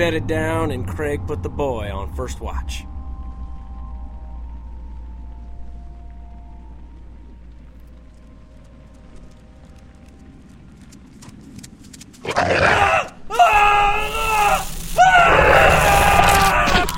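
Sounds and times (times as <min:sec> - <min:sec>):
speech: 0:00.0 - 0:02.9
low steady rumble: 0:00.0 - 0:12.2
people screaming: 0:12.5 - 0:16.9.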